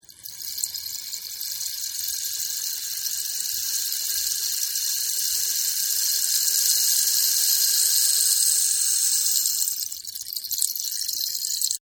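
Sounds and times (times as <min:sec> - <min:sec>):
rain stick: 0:00.0 - 0:11.8.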